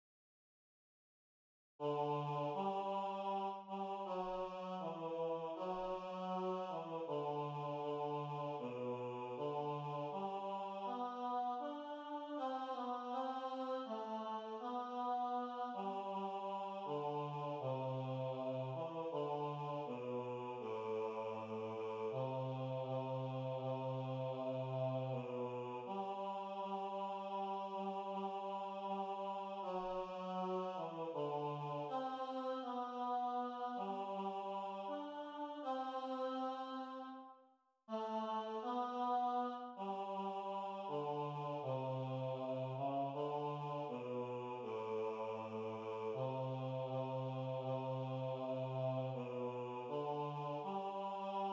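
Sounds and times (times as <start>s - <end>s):
baritone and tenor singing: 1.9s - 36.9s, 37.9s - 51.5s.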